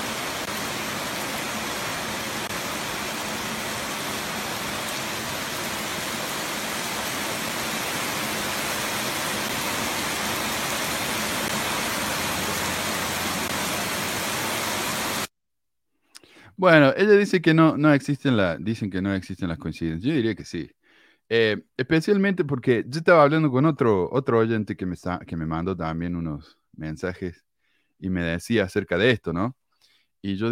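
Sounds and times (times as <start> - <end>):
dense rain falling in Campo de Sion Mexico: 0.0 - 15.3
speech: 16.6 - 29.6, 30.2 - 30.4.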